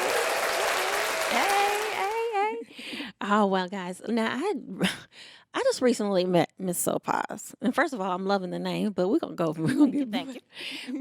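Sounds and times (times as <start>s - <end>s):
person whooping: 0.0s - 2.2s
crowd applause: 0.0s - 2.3s
speech: 1.3s - 1.6s, 2.7s - 10.9s.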